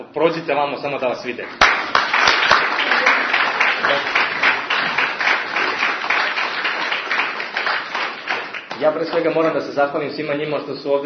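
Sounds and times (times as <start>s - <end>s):
speech: 0.1s - 1.9s, 3.8s - 4.2s, 8.8s - 11.0s
audience applauding award-winning high school students: 1.5s - 9.7s.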